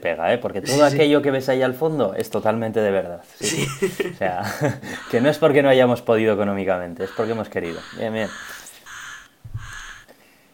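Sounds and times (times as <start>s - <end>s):
speech: 0.0s - 8.6s
laughter: 3.4s - 5.4s
pet parrot squawking: 4.9s - 5.6s, 7.0s - 10.1s.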